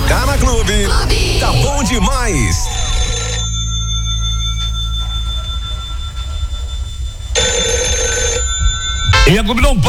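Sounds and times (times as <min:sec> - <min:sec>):
low rumbling hum: 0:00.0 - 0:09.8
speech: 0:00.4 - 0:02.8, 0:09.3 - 0:09.8
telephone ringing before a call is answered: 0:02.6 - 0:09.8.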